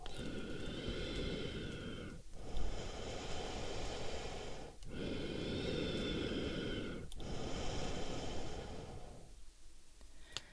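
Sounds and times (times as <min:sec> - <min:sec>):
sleeping person breathing heavily: 0:00.0 - 0:09.4, 0:10.2 - 0:10.5.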